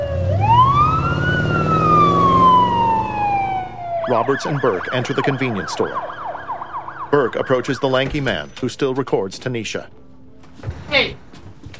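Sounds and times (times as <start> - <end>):
low vehicle rumble: 0.0 - 7.4
police car siren wailing: 0.0 - 8.1
speech: 4.1 - 6.2, 7.1 - 10.0, 10.9 - 11.2.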